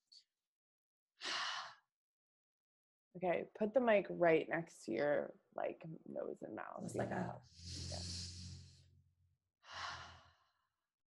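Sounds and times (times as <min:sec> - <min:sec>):
speech: 0:03.2 - 0:08.3
deep breath drawn in through the nose and exhaled out the mouth: 0:07.5 - 0:08.8, 0:09.7 - 0:10.4.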